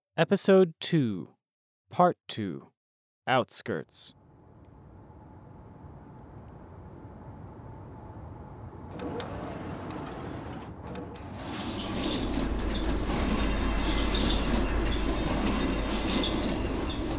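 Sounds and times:
speech: 0.2s - 4.2s
huge inner metal door of a fortified settlement rolling open: 8.9s - 17.1s
scraping metallic squeals: 11.2s - 17.1s.

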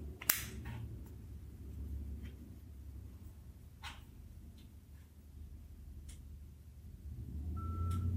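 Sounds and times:
low hum: 0.0s - 8.1s
electronic beep of a Victor Reader device powering on: 7.6s - 8.1s.

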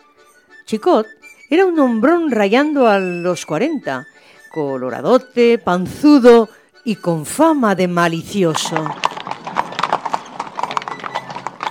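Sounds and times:
speech: 0.7s - 9.1s
horse hooves clopping on a hard surface as a horse-drawn cart stops in front of a farm: 8.1s - 11.7s.

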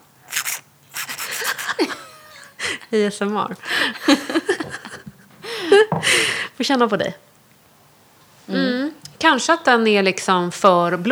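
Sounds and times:
old-fashioned perfume atomizer bulb being squeezed: 0.0s - 2.5s
laughter: 1.2s - 2.9s, 3.6s - 6.4s
speech: 2.9s - 4.5s, 5.7s - 7.3s, 8.5s - 11.1s.

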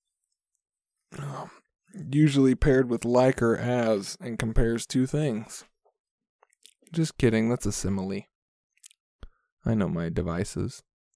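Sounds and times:
speech: 1.1s - 5.7s, 6.9s - 8.3s, 9.6s - 10.9s
drawn-out breathy yawn with a low groaning tone: 1.2s - 1.6s.

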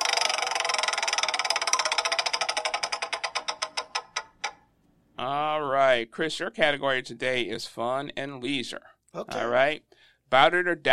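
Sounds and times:
category prize wheel clicker ticking on a quiz game: 0.0s - 4.7s
speech: 5.2s - 10.9s.

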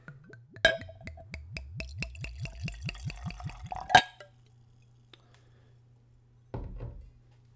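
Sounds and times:
whiskey glugging from a bottle into a glass: 0.0s - 4.3s.

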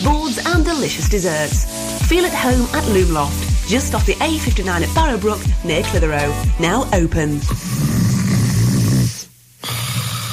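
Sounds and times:
speech: 0.6s - 7.9s
person snoring while asleep at night: 7.4s - 10.3s.

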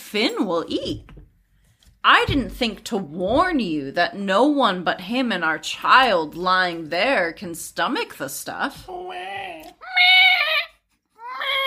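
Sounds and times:
speech: 0.1s - 1.1s, 2.0s - 10.4s
voice imitating a wailing dying cat with high-pitched yowls: 8.8s - 11.6s.

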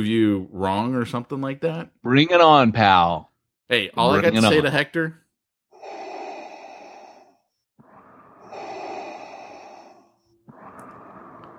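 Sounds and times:
speech: 0.0s - 5.2s
voice imitating loud heavy rasping breathing: 5.8s - 11.5s.

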